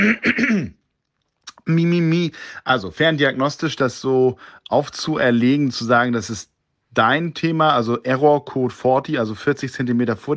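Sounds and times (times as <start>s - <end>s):
person clearing throat: 0.0s - 0.8s
speech: 0.0s - 0.8s, 1.7s - 10.3s.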